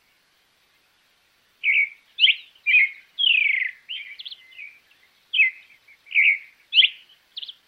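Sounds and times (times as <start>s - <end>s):
creamy-bellied thrush singing: 1.6s - 7.6s.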